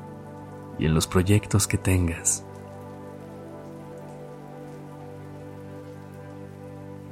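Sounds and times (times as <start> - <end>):
steady rain falling on a surface: 0.0 - 7.1
speech: 0.8 - 2.5.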